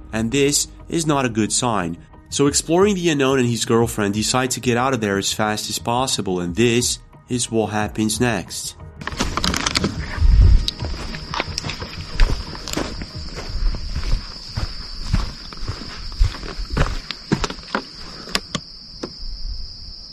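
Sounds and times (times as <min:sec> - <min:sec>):
speech: 0:00.1 - 0:09.2
footsteps crunching through the woods: 0:09.0 - 0:18.5
high insect or cricket drone: 0:09.0 - 0:20.1.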